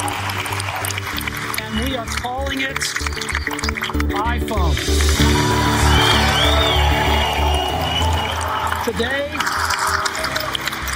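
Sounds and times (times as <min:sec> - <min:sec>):
large audience cheering and whooping: 0:00.0 - 0:01.4, 0:05.1 - 0:10.9
speech: 0:01.8 - 0:05.7, 0:08.9 - 0:09.6
rising whistles: 0:05.8 - 0:08.8.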